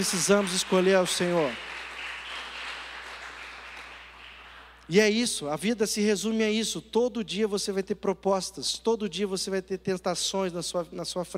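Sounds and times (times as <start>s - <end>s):
speech: 0.0s - 1.7s, 4.9s - 11.3s
audience applauding at night: 0.0s - 4.9s.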